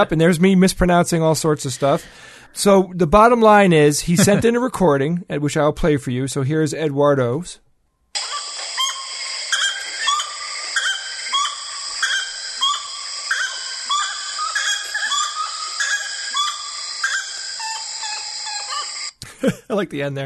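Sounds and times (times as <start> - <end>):
speech: 0.0 - 7.6, 19.8 - 20.2
chorus of birds: 8.2 - 19.1
gray-necked wood rail calling: 8.2 - 19.1
insects: 8.2 - 19.1.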